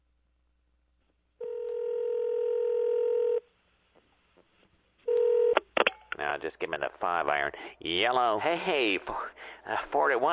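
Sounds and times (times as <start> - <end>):
telephone ringing with a steady electronic tone: 1.4 - 3.4, 5.1 - 5.6
speech: 6.4 - 10.3.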